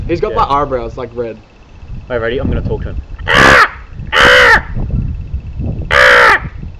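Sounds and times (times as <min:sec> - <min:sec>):
speech: 0:00.1 - 0:03.6
crow cawing: 0:03.2 - 0:04.8, 0:05.9 - 0:06.6.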